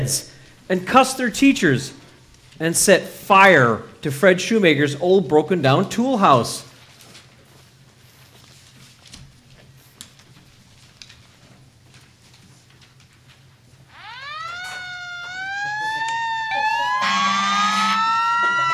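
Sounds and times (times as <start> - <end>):
speech: 0.0 - 2.0, 2.6 - 6.7
fire engine and police car sirens wailing: 13.9 - 18.7.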